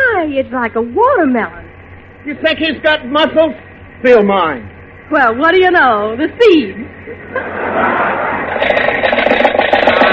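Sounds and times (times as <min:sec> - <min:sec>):
speech: 0:00.3 - 0:01.6, 0:02.2 - 0:08.9
laughter: 0:07.0 - 0:09.1
car engine sputtering and dying after running out of gas: 0:08.3 - 0:10.1.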